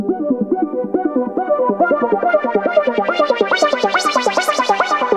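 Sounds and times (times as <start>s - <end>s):
early synth effects loop for dubstep: 0.1s - 5.1s.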